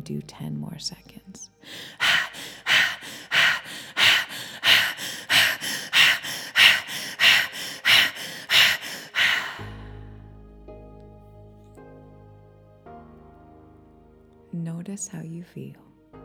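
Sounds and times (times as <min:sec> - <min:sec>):
speech: 0:00.0 - 0:02.2, 0:14.9 - 0:15.9
rapid forceful breathing through the nose during a breathing exercise: 0:01.6 - 0:10.2.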